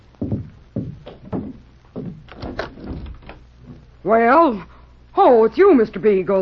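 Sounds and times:
dull thumps: 0:00.0 - 0:03.9
door being opened: 0:01.0 - 0:03.8
speech: 0:04.0 - 0:06.4.

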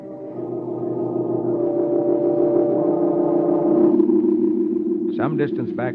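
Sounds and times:
rented car engine humming at low speed: 0:00.0 - 0:05.9
speech: 0:05.2 - 0:05.9.

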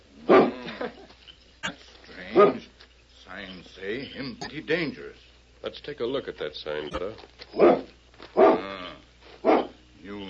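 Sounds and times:
dog barking: 0:00.2 - 0:00.7, 0:02.3 - 0:02.7, 0:07.5 - 0:08.8, 0:09.4 - 0:09.8
speech: 0:02.4 - 0:02.7, 0:03.7 - 0:07.9.

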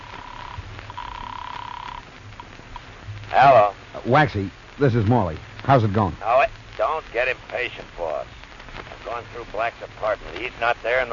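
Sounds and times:
telephone ringing tone over a phone line on an outgoing call: 0:00.0 - 0:02.1
phone line noise: 0:00.0 - 0:11.1
speech: 0:03.3 - 0:08.4, 0:09.0 - 0:11.1.

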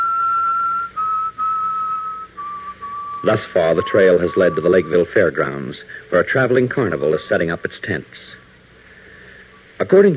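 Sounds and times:
man whistling a slow mournful tune: 0:00.0 - 0:06.1
speech: 0:03.2 - 0:08.4, 0:09.8 - 0:10.1.

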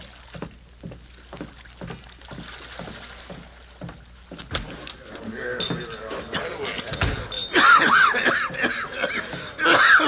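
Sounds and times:
rhythmic knocks and splashes: 0:00.0 - 0:10.0
laughter: 0:06.0 - 0:10.0
man with dry hacking cough reaching a ship's dock: 0:07.5 - 0:10.0.

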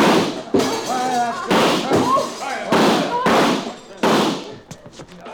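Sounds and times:
gunshots shooting out the lights in a room: 0:00.0 - 0:00.8, 0:01.5 - 0:02.1, 0:02.7 - 0:04.6.

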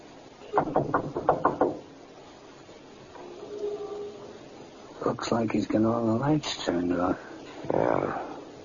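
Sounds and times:
speech: 0:00.5 - 0:01.2, 0:05.1 - 0:08.3
police officers knocking on a front door: 0:00.5 - 0:01.9
faint low murmur: 0:02.0 - 0:08.6.

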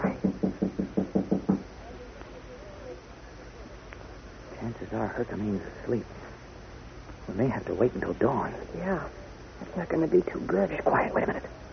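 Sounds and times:
soft knocking on a bolted wooden door: 0:00.1 - 0:01.7
speech: 0:04.9 - 0:06.2, 0:07.3 - 0:11.6.

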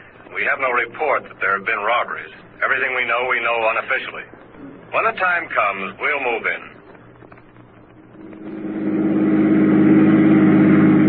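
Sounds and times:
speech: 0:00.4 - 0:06.7
car engine revving: 0:08.0 - 0:11.0.

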